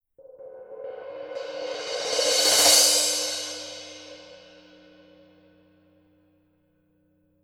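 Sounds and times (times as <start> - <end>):
Paiste Color Sound 900 Black crash cymbal: 0.2 - 5.5.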